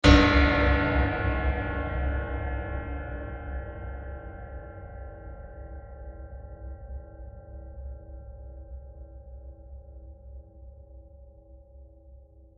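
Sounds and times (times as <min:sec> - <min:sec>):
huge metal impact blast: 0:00.0 - 0:03.8.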